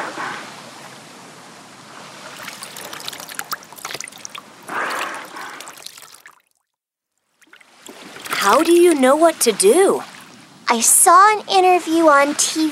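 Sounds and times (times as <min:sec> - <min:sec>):
water pouring and splashing onto a stranded dolphin on a beach: 0:02.0 - 0:06.7, 0:07.3 - 0:10.4
speech: 0:08.5 - 0:10.1, 0:10.7 - 0:12.7.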